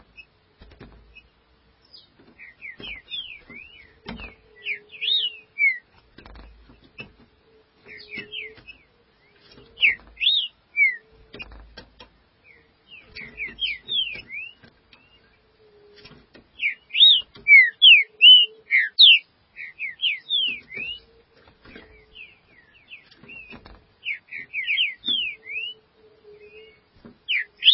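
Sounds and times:
green-winged saltator song of slurred whistles: 1.9s - 5.9s, 7.9s - 11.1s, 12.4s - 15.3s, 16.6s - 21.2s, 21.8s - 27.7s.

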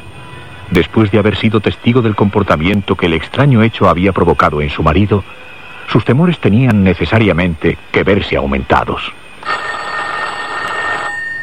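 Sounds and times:
speech: 0.7s - 9.6s
telephone bell ringing: 9.4s - 11.4s.

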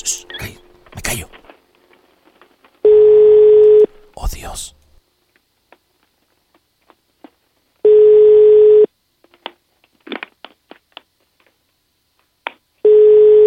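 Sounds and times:
ringback tone of an outgoing phone call going unanswered: 2.9s - 3.9s, 7.9s - 8.9s, 12.8s - 13.4s.

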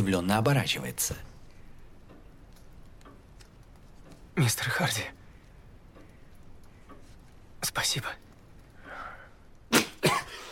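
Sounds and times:
speech: 0.0s - 1.3s, 4.4s - 5.2s, 7.6s - 8.2s
young man coughing into a handkerchief: 9.7s - 10.4s.

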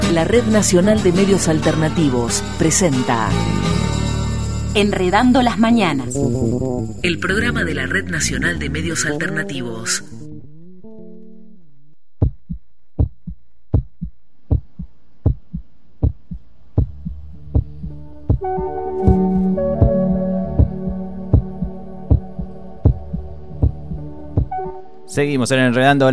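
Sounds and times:
speech: 0.2s - 4.0s, 4.8s - 10.2s, 25.2s - 26.1s
heartbeat: 12.2s - 24.7s.

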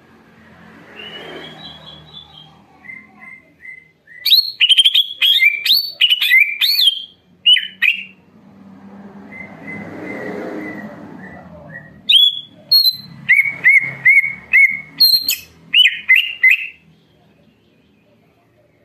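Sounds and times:
leafbird song with sharp varied whistled phrases: 0.9s - 8.2s, 9.3s - 16.8s.

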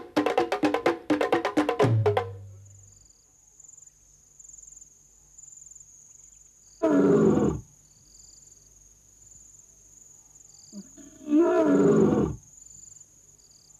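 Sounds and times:
crickets chirring: 0.0s - 13.7s
wild animal roaring to mark its territory: 11.0s - 12.4s.

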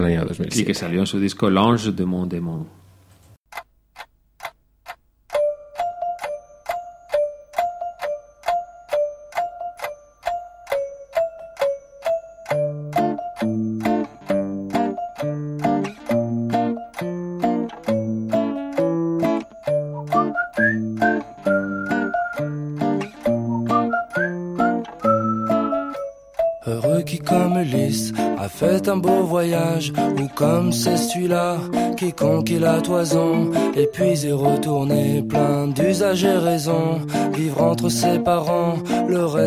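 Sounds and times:
speech: 0.0s - 2.8s, 28.8s - 39.4s
steady ticking beat: 3.4s - 39.4s
fuller chords: 3.9s - 39.4s
whistled pop song: 19.2s - 39.4s.

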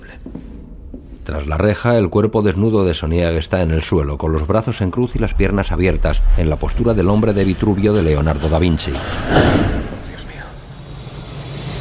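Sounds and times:
speech: 1.3s - 9.8s
private jet roaring in flight: 7.4s - 11.7s.

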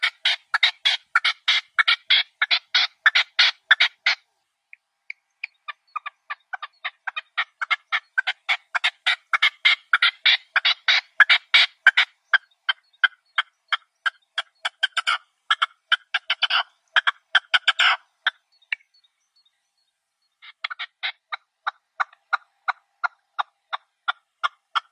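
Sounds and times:
partridge chanting with scratchy chuckling notes: 0.0s - 24.8s.

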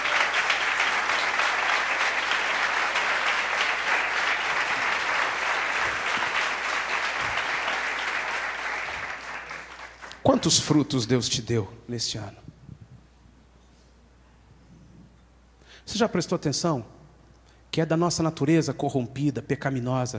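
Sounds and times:
church congregation applauding during a service: 0.0s - 11.0s
speech: 10.2s - 12.5s, 16.0s - 17.0s, 17.8s - 20.1s.

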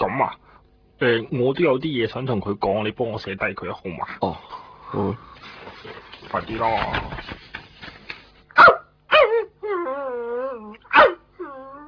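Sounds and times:
speech: 0.2s - 0.4s, 1.0s - 7.4s
dog barking: 8.6s - 9.4s, 10.9s - 11.3s
dog whining: 8.6s - 11.8s.

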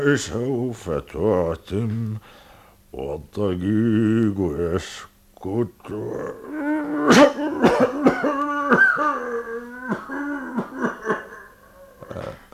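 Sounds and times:
speech: 0.0s - 8.0s
man seized by a fit of coughing: 6.6s - 12.5s.

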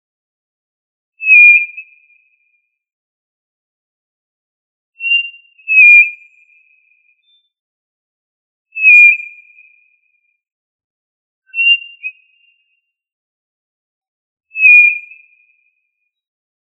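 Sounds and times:
tinamou whistles: 1.2s - 1.7s, 5.0s - 6.2s, 8.8s - 9.2s, 11.5s - 12.2s, 14.6s - 15.0s.

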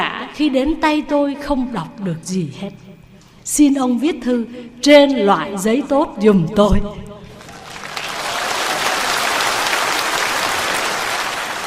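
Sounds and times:
speech: 0.4s - 2.9s, 3.5s - 7.1s
Buddhist audience applauding at a Dharma talk: 7.4s - 11.6s.

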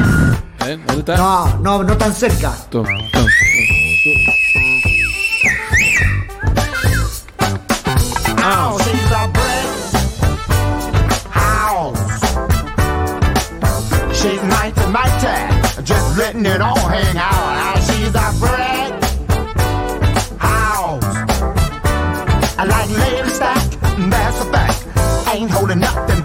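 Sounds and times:
person whistling a clear steady high note: 0.0s - 0.6s, 2.8s - 7.2s
loud rhythmic music with beats: 0.4s - 26.2s
speech: 0.7s - 4.4s.

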